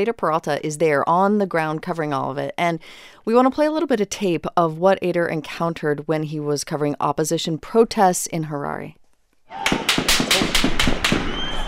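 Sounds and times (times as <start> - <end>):
speech: 0.0 - 10.6
gunshots fired near ruling-party offices during opposition protests in Harare: 9.6 - 11.5.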